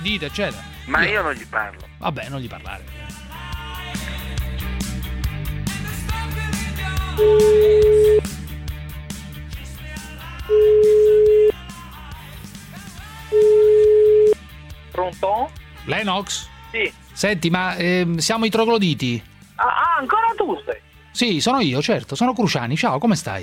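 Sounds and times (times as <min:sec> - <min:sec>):
speech: 0:00.0 - 0:03.2, 0:07.2 - 0:07.9, 0:15.0 - 0:23.4
music: 0:00.0 - 0:23.4
ringback tone of an outgoing telephone call: 0:07.2 - 0:08.3, 0:10.5 - 0:11.6, 0:13.3 - 0:14.4.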